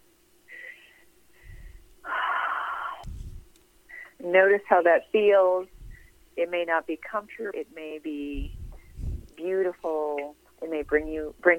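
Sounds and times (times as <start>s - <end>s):
big deep breath during a guided meditation: 0.5s - 4.2s, 5.7s - 6.2s, 8.5s - 9.3s
speech: 4.2s - 5.8s, 6.4s - 8.6s, 9.4s - 11.5s.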